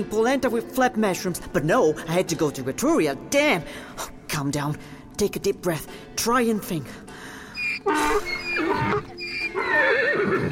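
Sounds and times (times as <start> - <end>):
speech: 0.0 - 8.3
horse neighing: 7.6 - 10.5.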